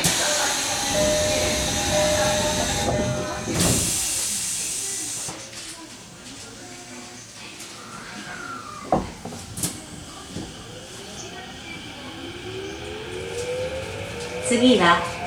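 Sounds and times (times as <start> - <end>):
pneumatic hiss of subway train doors shutting: 0.0 - 5.4
subway train doors clunking shut: 0.0 - 5.5, 7.6 - 15.2
steady subway train rumble: 0.0 - 15.2
speech: 14.5 - 15.1.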